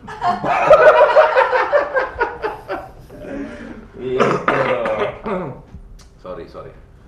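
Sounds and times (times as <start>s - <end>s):
laughter: 0.0s - 5.5s
speech: 0.2s - 1.0s
harsh raspy cough: 4.1s - 5.6s
rough throat clearing: 4.1s - 5.7s.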